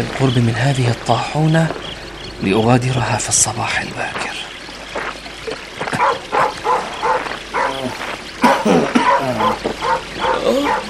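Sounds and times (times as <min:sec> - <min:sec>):
speech: 0:00.0 - 0:01.8, 0:02.4 - 0:04.4
dog barking near a mill by a river at night: 0:05.9 - 0:08.0, 0:08.9 - 0:10.8.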